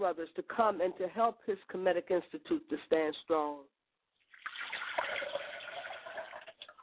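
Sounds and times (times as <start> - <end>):
speech: 0.0 - 3.7
water poured out as a libation: 4.2 - 6.8.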